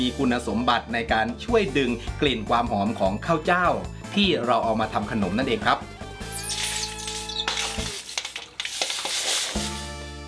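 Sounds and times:
speech: 0.0 - 5.9
soaked finely pounded jasmine rice batter sizzling in a pan: 6.3 - 9.9.

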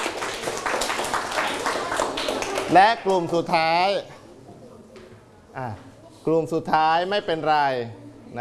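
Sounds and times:
group clapping during a group activity: 0.0 - 3.6
speech: 2.7 - 4.1, 5.6 - 8.3.

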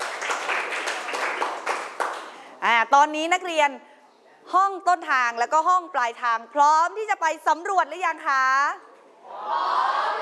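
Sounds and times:
classroom of students clapping: 0.0 - 2.4
speech: 2.8 - 3.9, 4.5 - 8.9, 9.5 - 10.2.

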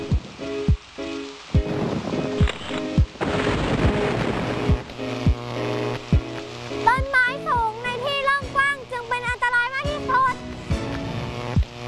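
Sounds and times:
steady rain hissing: 0.0 - 11.8
deep rumbles of thunder: 1.5 - 8.7.

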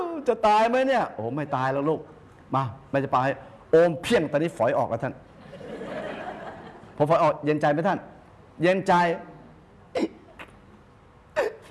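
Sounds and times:
speech: 0.2 - 5.3, 7.0 - 9.3, 10.0 - 10.2
laughter: 5.4 - 7.0
child hiccuping: 10.0 - 10.6, 11.4 - 11.7.

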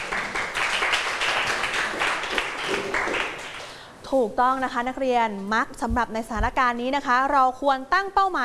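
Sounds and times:
room of students applauding for a classmate: 0.0 - 3.8
speech: 4.1 - 8.4.

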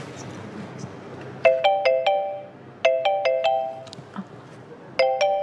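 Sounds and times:
mobile phone ringtone for an incoming call: 1.5 - 3.9, 5.0 - 5.4.

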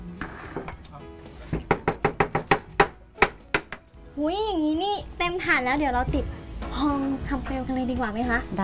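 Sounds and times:
sharp hollow wooden knocks knocking pressed Thai dessert out of its mold: 1.5 - 3.9
speech: 4.2 - 8.6.

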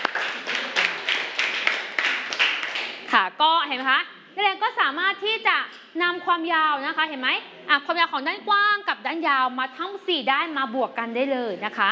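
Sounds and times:
students in a classroom clapping for a classmate's correct answer: 0.0 - 3.1
speech: 3.1 - 11.9.

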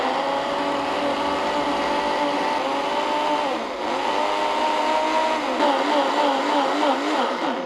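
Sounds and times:
blender blending shredded pandan leaves with water: 0.0 - 7.6.

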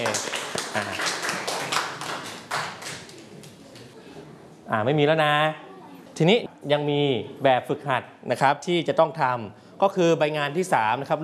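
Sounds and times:
speech: 0.0 - 1.1, 4.7 - 5.6, 6.2 - 11.2
group of children clapping together in a room: 0.0 - 3.9.

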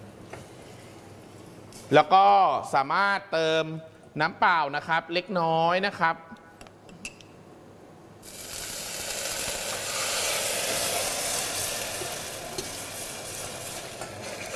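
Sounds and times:
speech: 1.9 - 6.3
sugar caramelizing in a pan over low heat: 8.2 - 14.5
faint scraping stirring ticks in a pan: 8.3 - 14.5.

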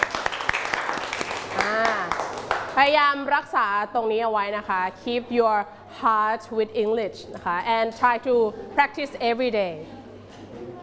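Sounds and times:
people clapping in praise of children in an English lesson: 0.0 - 2.9
speech: 2.8 - 10.0.

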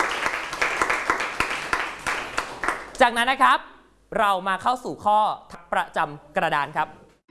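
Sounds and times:
students applauding a group in a classroom: 0.0 - 2.9
speech: 3.0 - 7.0.

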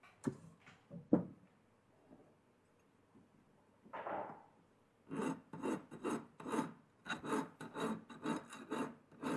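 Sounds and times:
large file rasping on welded edges: 5.1 - 9.3.

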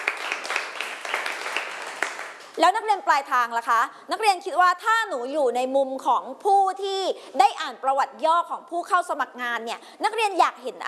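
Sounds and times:
class applauding two students: 0.0 - 2.6
speech: 2.6 - 10.8.

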